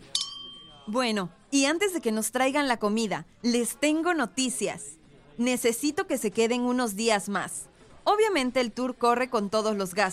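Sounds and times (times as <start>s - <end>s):
glasses clinking in a toast: 0.0s - 0.9s
speech: 0.9s - 10.1s.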